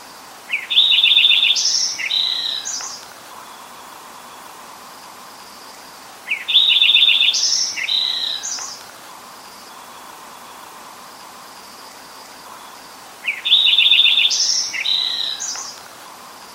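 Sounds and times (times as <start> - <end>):
soft hiss: 0.0 - 16.5
Lincoln's sparrow singing bubbly jumbled song: 0.5 - 4.4, 6.2 - 8.9, 11.9 - 15.8.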